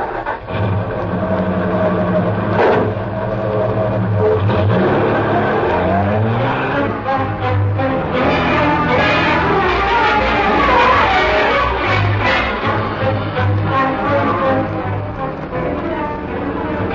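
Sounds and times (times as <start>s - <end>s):
sedan engine running and pulling away: 0.0s - 16.9s.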